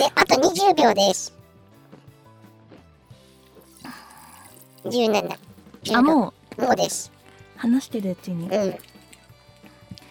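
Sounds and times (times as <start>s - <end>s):
speech: 0.0s - 1.4s, 4.8s - 8.9s
person sipping carbonated fizzy soda: 3.2s - 5.7s
carbonation hiss of fizzy soda: 3.2s - 5.8s
swallowing: 3.6s - 5.5s.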